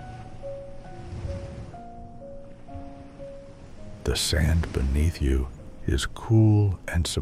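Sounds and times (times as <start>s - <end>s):
faint sustained musical drone: 0.0s - 7.2s
soft ocean surf washing on shore: 0.0s - 7.2s
speech: 4.1s - 7.2s.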